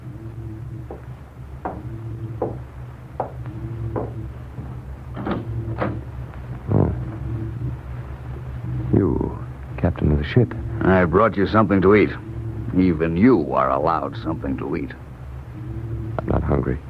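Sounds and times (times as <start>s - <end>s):
steady low mechanical hum: 0.0s - 16.8s
firm knocks on a ship's cabin door: 0.9s - 4.2s
speech: 10.4s - 15.0s.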